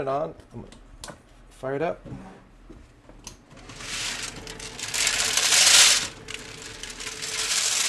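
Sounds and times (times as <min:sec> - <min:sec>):
speech: 0:00.0 - 0:02.8
cacao beans tumbling in a heated rotisserie turkey roaster: 0:03.6 - 0:07.8.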